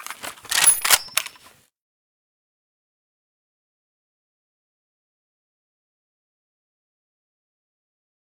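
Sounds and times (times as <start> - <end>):
SA58 misfire: 0.0 - 1.5.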